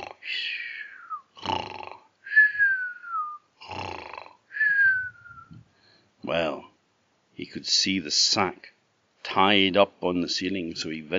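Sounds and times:
voice imitating a sleeper with rough rumbling snores: 0:00.0 - 0:00.3, 0:01.3 - 0:02.1, 0:03.6 - 0:04.4
voice imitating a sleeper with breathy whistles: 0:00.0 - 0:01.4, 0:02.2 - 0:03.6, 0:04.5 - 0:05.6
speech: 0:07.4 - 0:11.1.

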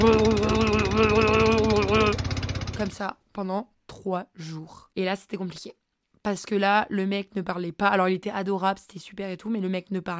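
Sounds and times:
voice imitating the motor of a small fisherman's boat: 0:00.0 - 0:03.1
speech: 0:02.8 - 0:10.1.

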